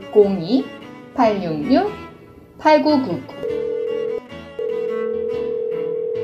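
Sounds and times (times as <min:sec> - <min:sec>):
faint music: 0:00.0 - 0:06.2
speech: 0:00.1 - 0:02.0, 0:02.6 - 0:03.4
telephone dial tone: 0:03.4 - 0:06.2.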